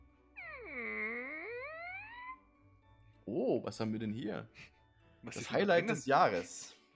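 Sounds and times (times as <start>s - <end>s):
voice imitating a little door creaking open: 0.4s - 2.4s
speech: 3.3s - 6.8s.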